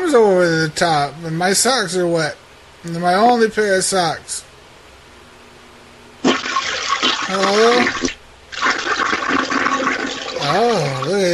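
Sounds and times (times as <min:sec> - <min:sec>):
speech: 0:00.1 - 0:04.5, 0:07.3 - 0:08.2, 0:10.5 - 0:11.3
toilet flushing: 0:06.2 - 0:11.3
person calling out a single word: 0:07.3 - 0:08.0, 0:10.4 - 0:11.3.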